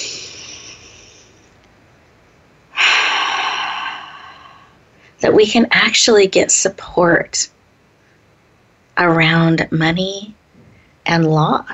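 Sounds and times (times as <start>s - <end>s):
deep breath in during a guided pause in a talk: 2.8s - 5.2s
speech: 5.2s - 7.6s, 9.0s - 10.4s, 11.1s - 11.7s.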